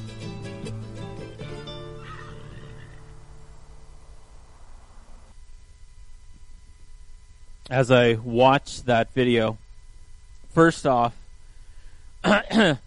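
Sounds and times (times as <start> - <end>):
outdoor noise: 0.0 - 12.8
mare whinnying: 1.8 - 3.4
speech: 7.7 - 9.6, 10.6 - 11.2, 12.2 - 12.8.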